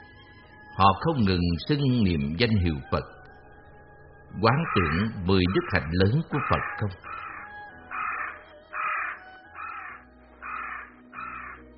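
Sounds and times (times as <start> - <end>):
speech: 0.8 - 3.2, 4.3 - 7.2
harsh crow caws: 4.5 - 11.6.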